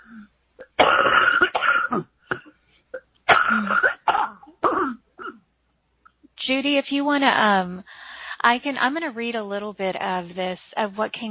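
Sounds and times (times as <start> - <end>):
rough throat clearing: 0.0 - 5.4
loud harsh coughs: 0.6 - 2.6, 3.3 - 5.4
speech: 6.5 - 11.2.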